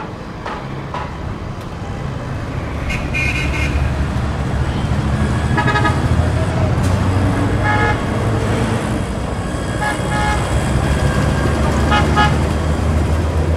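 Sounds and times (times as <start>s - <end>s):
engines and road noise of dense evening street traffic: 0.0s - 13.5s
car horns honking in dense evening street traffic: 2.8s - 8.6s, 9.7s - 12.8s.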